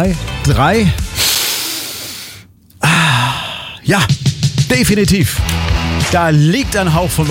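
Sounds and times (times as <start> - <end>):
speech: 0.0 - 1.0, 3.8 - 7.3
music: 0.0 - 2.2, 3.8 - 7.3
deep breath drawn in through the nose: 1.0 - 3.8.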